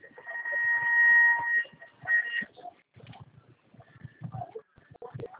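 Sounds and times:
steady train door warning tone: 0:00.2 - 0:02.5.

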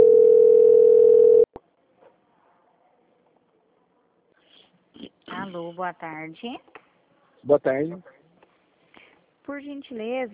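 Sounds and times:
telephone tone during call transfer: 0:00.0 - 0:01.5
speech: 0:05.8 - 0:06.8, 0:07.4 - 0:08.2, 0:09.5 - 0:10.3.

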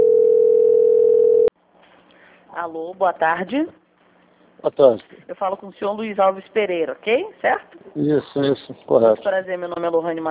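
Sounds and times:
steady single-pitched telephone tone during a call transfer: 0:00.0 - 0:01.5
speech: 0:02.6 - 0:03.8, 0:04.6 - 0:10.2.

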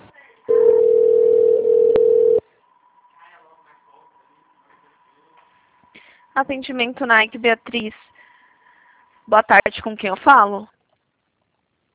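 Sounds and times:
phone line tone while a call to a customer service line is transferred: 0:00.5 - 0:02.5
speech: 0:06.4 - 0:08.1, 0:09.3 - 0:10.7.

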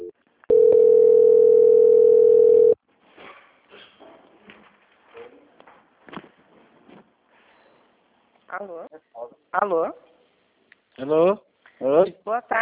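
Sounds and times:
telephone line tone during a call transfer: 0:00.0 - 0:02.8
speech: 0:08.6 - 0:10.1, 0:11.0 - 0:12.5.

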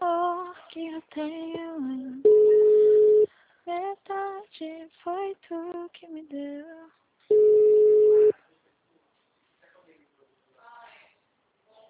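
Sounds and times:
telephone busy tone after a dropped call: 0:02.3 - 0:03.3, 0:07.3 - 0:08.3.

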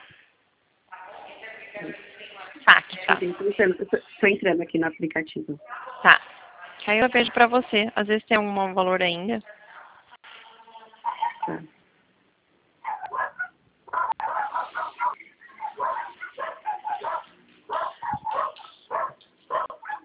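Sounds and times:
speech: 0:02.7 - 0:06.3, 0:06.9 - 0:09.6
several dogs barking on the street behind a building: 0:11.0 - 0:11.6, 0:12.8 - 0:20.0.

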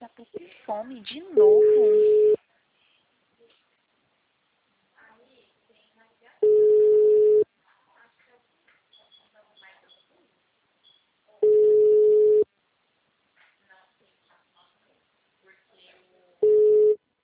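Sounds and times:
faint scattered noises: 0:00.0 - 0:17.2
speech: 0:00.2 - 0:02.2
telephone ringing with an incoming call: 0:01.4 - 0:02.4, 0:06.4 - 0:07.4, 0:11.4 - 0:12.5, 0:16.4 - 0:17.0.

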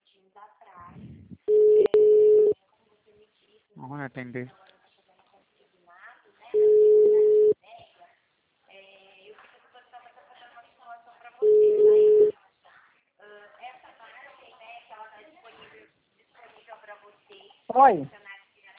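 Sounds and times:
electronic phone line tone as a call drops: 0:01.5 - 0:02.6, 0:06.6 - 0:07.6, 0:11.4 - 0:12.3
speech: 0:03.9 - 0:04.7.

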